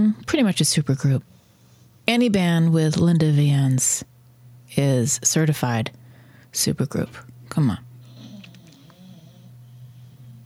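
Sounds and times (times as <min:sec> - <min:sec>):
speech: 0:00.0 - 0:01.4, 0:02.1 - 0:04.1, 0:04.7 - 0:07.9
dog snoring: 0:08.0 - 0:10.4.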